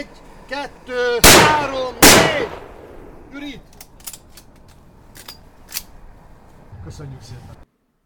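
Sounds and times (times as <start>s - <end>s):
speech: 0.0s - 2.6s, 3.3s - 3.7s, 6.8s - 7.6s
rifle shot fired in a trench on a film set: 1.2s - 3.3s.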